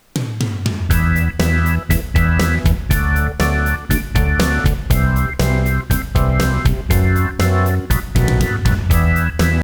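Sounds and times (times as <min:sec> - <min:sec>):
music tones: 0:00.0 - 0:09.6.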